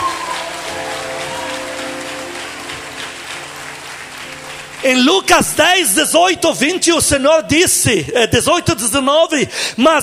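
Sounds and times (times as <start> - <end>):
audience applauding during a church sermon: 0.0 - 6.1
speech: 4.8 - 10.0.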